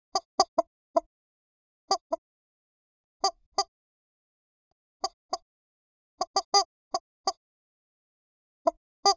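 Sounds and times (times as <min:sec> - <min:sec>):
chicken clucking: 0:00.2 - 0:01.1, 0:01.9 - 0:02.2, 0:05.0 - 0:05.4, 0:06.2 - 0:07.4.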